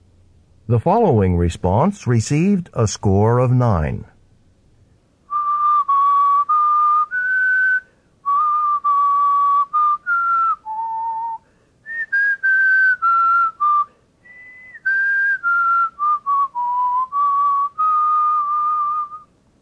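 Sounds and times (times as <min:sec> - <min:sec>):
speech: 0:00.7 - 0:04.1
person whistling a melody in a melody test: 0:05.3 - 0:19.3.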